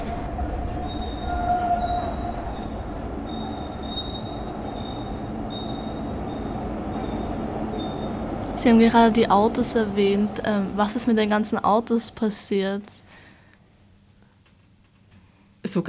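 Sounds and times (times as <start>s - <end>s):
subway train wheels squealing: 0.0s - 11.5s
subway train passing on a former street: 0.0s - 13.2s
speech: 8.6s - 13.1s.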